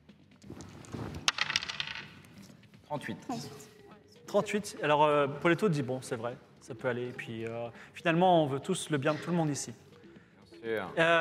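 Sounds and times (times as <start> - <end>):
dice being rolled on a table: 0.5 - 2.6
speech: 2.9 - 9.8, 10.6 - 11.1.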